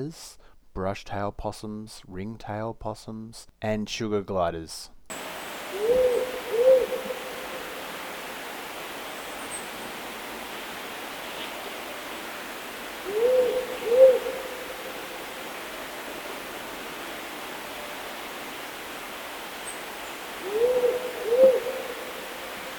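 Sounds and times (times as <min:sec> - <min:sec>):
speech: 0:00.0 - 0:05.0
steady hiss of noise: 0:00.0 - 0:22.7
powerful owl giving deep slow double hoots: 0:05.1 - 0:22.7.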